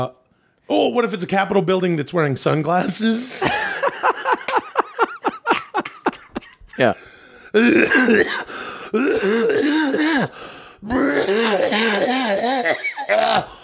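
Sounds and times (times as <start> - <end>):
speech: 0.0 - 4.2, 6.8 - 13.5
laughter: 3.0 - 7.0
person clearing throat raspily: 7.6 - 10.3, 11.0 - 13.5
person coughing harshly: 7.6 - 10.3, 11.0 - 13.1.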